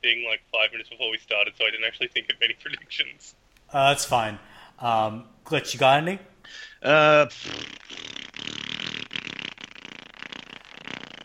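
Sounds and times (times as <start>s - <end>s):
speech: 0.0s - 8.2s
voice imitating farting noises: 6.9s - 11.2s.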